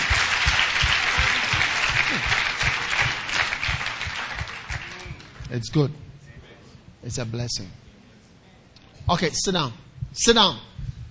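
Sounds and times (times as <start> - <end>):
room full of people applauding: 0.0 - 5.6
speech: 5.5 - 6.0, 7.0 - 7.8, 9.1 - 10.7.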